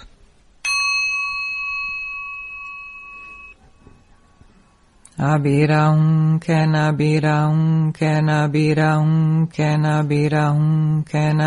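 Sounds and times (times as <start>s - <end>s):
single bell struck during a mantra recitation: 0.6s - 4.8s
speech: 5.2s - 11.4s.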